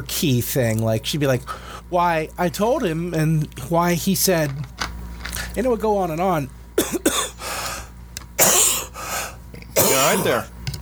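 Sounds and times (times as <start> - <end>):
speech: 0.1 - 4.7, 5.6 - 7.1, 10.1 - 10.5
person coughing harshly: 6.8 - 7.4, 8.4 - 9.0, 9.8 - 10.5.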